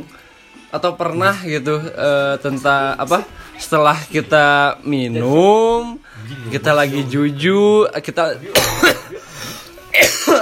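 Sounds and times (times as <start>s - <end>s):
speech: 0.0s - 9.0s
harsh throaty coughs: 8.5s - 9.3s, 9.9s - 10.4s.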